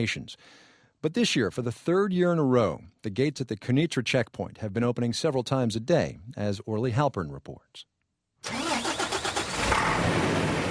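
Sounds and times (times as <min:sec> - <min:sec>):
speech: 0:00.0 - 0:08.6
apple truck engine cranking and rumbling at the Kunitra checkpoint gate: 0:08.4 - 0:10.6.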